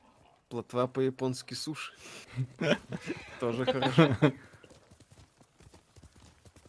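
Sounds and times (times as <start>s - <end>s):
speech: 0.5s - 4.5s
laughter: 2.3s - 4.5s
horse hooves clip-clopping: 2.6s - 6.6s.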